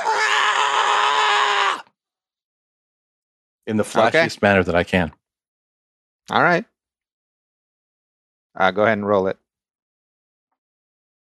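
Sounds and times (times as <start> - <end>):
person screaming at full volume: 0.0 - 1.9
speech: 3.7 - 5.2, 6.3 - 6.7, 8.6 - 9.4.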